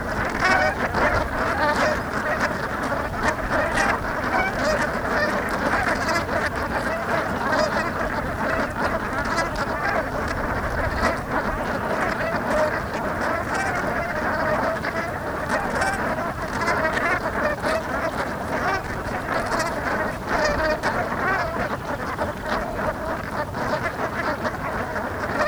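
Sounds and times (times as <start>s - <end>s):
ducks: 0.0s - 25.4s.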